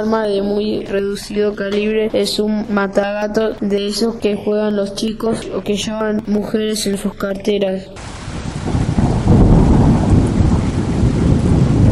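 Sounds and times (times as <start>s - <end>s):
speech: 0.0s - 8.2s
deep rolling thunder from an intense night-time electrical storm: 8.0s - 11.9s
steady hiss of heavy rain: 8.0s - 11.9s.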